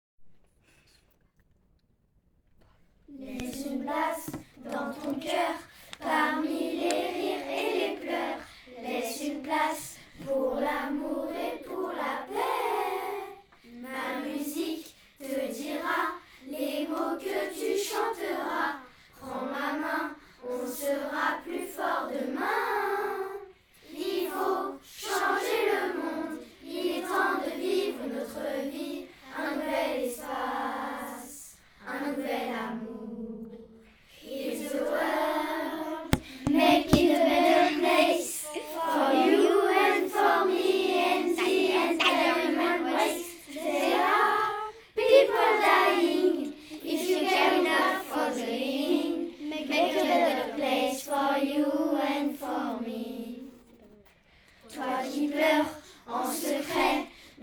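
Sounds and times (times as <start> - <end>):
choir singing a chorale: 3.4 - 53.5, 54.7 - 57.4.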